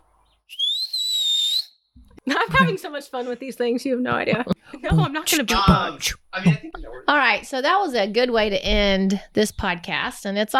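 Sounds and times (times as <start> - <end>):
person whistling: 0.5 - 1.8
laughter: 2.2 - 6.7
speech: 2.3 - 10.5.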